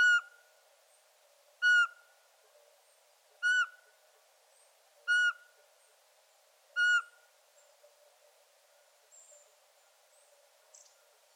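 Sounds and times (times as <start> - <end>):
Eurasian pygmy owl giving loud clear piping whistles: 1.6 - 2.0, 3.4 - 3.8, 5.1 - 5.5, 6.8 - 7.2.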